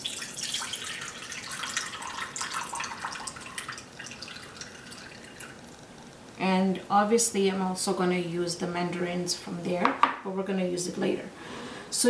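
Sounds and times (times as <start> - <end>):
canned juice pouring into a bowl: 0.0 - 5.8
speech: 6.4 - 11.4.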